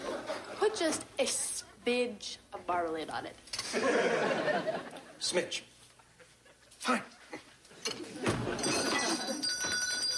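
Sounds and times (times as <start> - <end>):
speech: 0.7 - 5.7, 6.8 - 8.8
laughter: 3.7 - 5.2
small bell ringing: 8.6 - 10.1.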